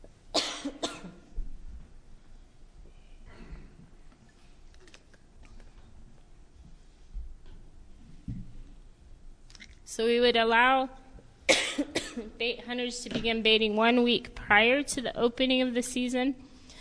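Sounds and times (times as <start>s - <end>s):
person coughing: 0.3s - 1.3s, 11.5s - 12.4s
speech: 10.0s - 11.0s, 12.2s - 16.5s.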